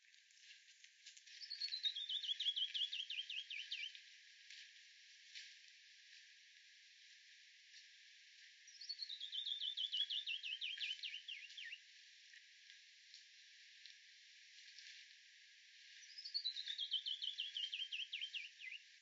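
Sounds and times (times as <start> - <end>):
canyon wren singing: 1.6 - 3.9, 8.8 - 11.8, 16.1 - 18.8.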